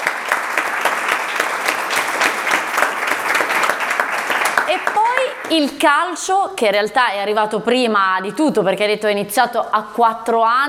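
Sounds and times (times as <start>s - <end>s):
crowd applauding: 0.0s - 5.8s
speech: 4.7s - 10.6s.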